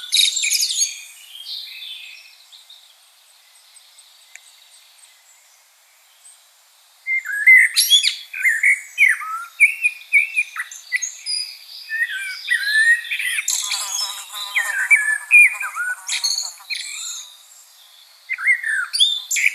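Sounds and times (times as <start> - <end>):
common blackbird singing: 7.1 - 19.5.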